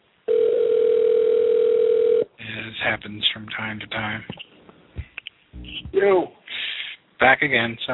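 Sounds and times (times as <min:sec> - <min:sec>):
telephone dial tone after dropped call: 0:00.3 - 0:02.2
speech: 0:02.8 - 0:04.5, 0:05.9 - 0:06.4, 0:07.2 - 0:07.9.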